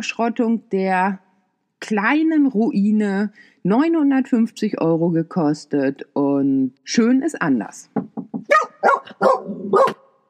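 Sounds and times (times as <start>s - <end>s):
speech: 0.0s - 1.2s, 1.8s - 8.0s, 9.0s - 10.0s
knock at a motorhome: 8.0s - 8.6s
dog barking at a motorhome pitch: 8.5s - 10.1s.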